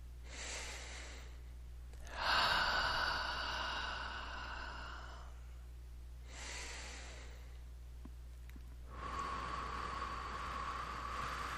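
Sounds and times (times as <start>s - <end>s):
slow deep breathing during a guided meditation: 0.2s - 7.7s, 8.8s - 11.5s.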